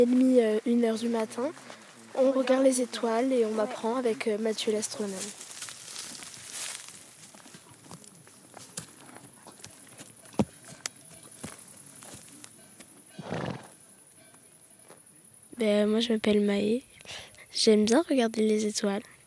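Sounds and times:
speech: 0.0s - 5.4s, 15.6s - 19.1s
donkey hooves clopping on a mountain trail: 0.0s - 13.5s
outdoor noise: 0.0s - 19.2s.

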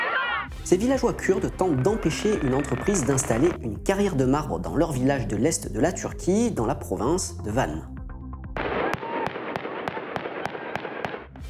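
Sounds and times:
speech: 0.7s - 7.9s
live-round warning gunfire from the Turkish army in a Kurdish village in Van province: 8.6s - 11.4s.

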